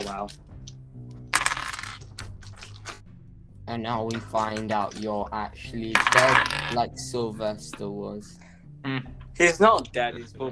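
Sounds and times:
speech: 0.1 - 0.5, 3.7 - 10.5
dice clattering onto a hard surface during a tabletop role-playing game: 1.4 - 2.1, 5.9 - 6.8.

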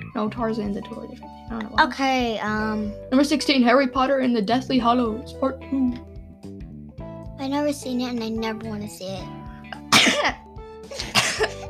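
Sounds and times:
speech: 0.2 - 6.1, 7.4 - 9.4
person coughing and sneezing: 9.7 - 11.6.

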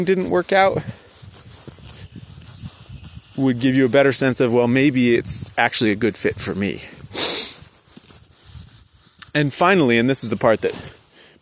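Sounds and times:
speech: 0.0 - 1.0, 3.4 - 7.4, 9.3 - 11.4
dog sniffing and snuffling at the ground: 7.1 - 7.9.

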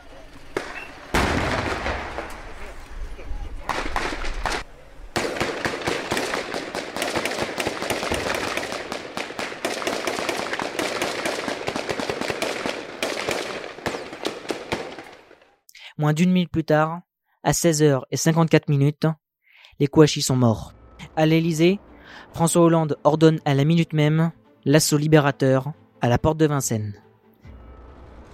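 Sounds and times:
gunfire exchanged between gunmen and tactical gendarmes: 0.5 - 2.7, 3.6 - 15.6
speech: 16.0 - 19.2, 19.8 - 27.0.

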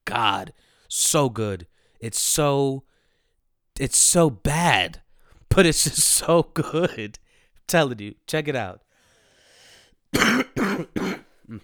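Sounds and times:
speech: 0.1 - 2.9, 3.8 - 8.8, 10.1 - 11.6
person clearing throat with harsh coughs: 10.1 - 11.6.

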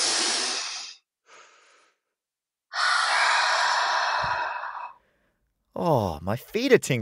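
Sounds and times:
big deep breath in and out as a relaxation breathing exercise: 0.0 - 5.5
speech: 5.8 - 6.9.

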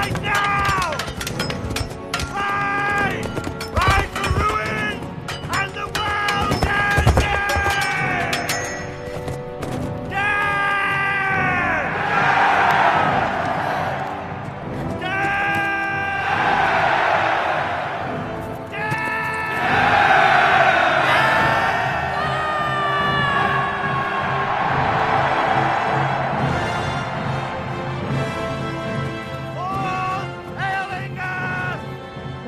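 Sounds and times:
army cheering during a battle charge: 0.0 - 1.2, 2.2 - 8.8, 10.0 - 31.9
large crowd yelling and whooping: 19.6 - 27.5.

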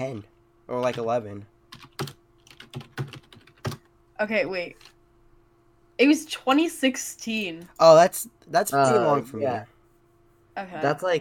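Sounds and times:
speech: 0.0 - 2.2, 4.2 - 4.9, 6.0 - 9.7, 10.6 - 11.1
typing on a computer keyboard: 1.7 - 3.9.

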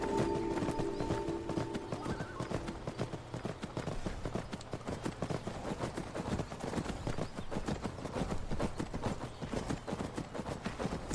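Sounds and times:
horse hooves clip-clopping while ridden down steps: 0.0 - 11.1.

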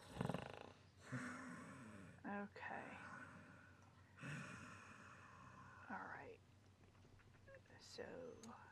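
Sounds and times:
mild faint snore with rattling fluttering exhale: 0.0 - 6.4
speech: 2.4 - 3.1, 5.9 - 6.5, 7.7 - 8.7.

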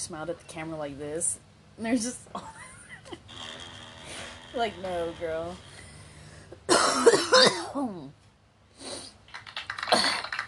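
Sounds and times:
speech: 0.0 - 3.5, 4.5 - 5.7, 6.8 - 8.2
person coughing after a bong hit: 6.7 - 8.0.

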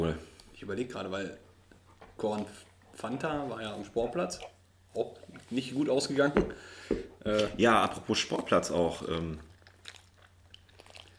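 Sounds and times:
speech: 0.1 - 1.5, 2.2 - 9.5
dog chewing noisily with wet smacking and crunching bites: 1.5 - 5.6, 8.0 - 11.1.

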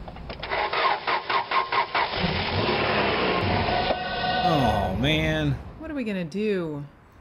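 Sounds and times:
car engine cranking, failing to start: 0.0 - 4.4
speech: 4.6 - 7.0.

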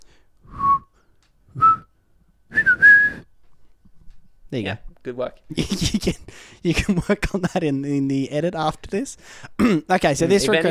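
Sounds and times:
person whistling a tune: 0.5 - 1.9, 2.5 - 3.3
speech: 4.5 - 10.6.

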